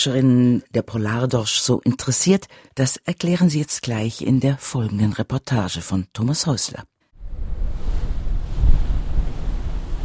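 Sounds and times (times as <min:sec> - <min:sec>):
speech: 0:00.0 - 0:07.0
ocean waves surging against a research ship at sea: 0:07.2 - 0:10.0
wind buffeting the microphone at sea: 0:07.2 - 0:10.0.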